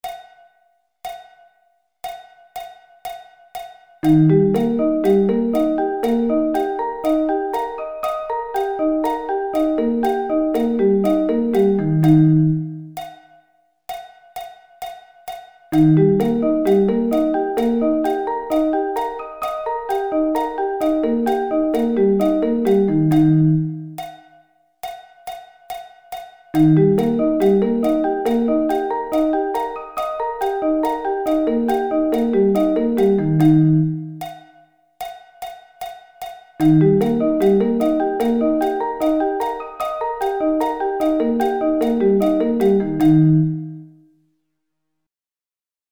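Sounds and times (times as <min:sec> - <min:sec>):
E flat arpeggio inversions: 0:04.0 - 0:13.0, 0:15.8 - 0:24.0, 0:26.6 - 0:34.2, 0:36.6 - 0:44.0.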